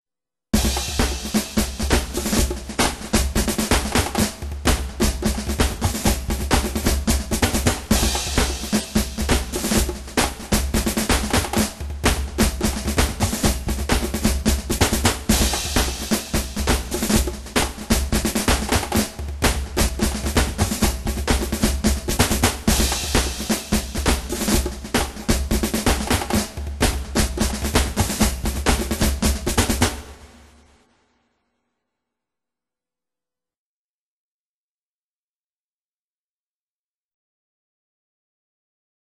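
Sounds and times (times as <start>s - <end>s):
drum drill: 0.6s - 30.8s.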